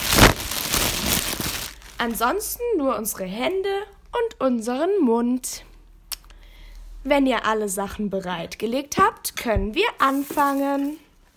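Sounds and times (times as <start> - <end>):
crinkly plastic bag rustled to imitate a crackling oven: 0.0 - 2.2
speech: 2.0 - 5.7, 7.0 - 11.0.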